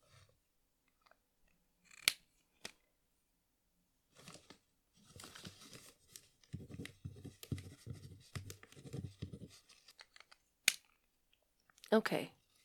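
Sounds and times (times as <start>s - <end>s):
pen scratching on paper: 6.6s - 9.7s
speech: 11.9s - 12.4s.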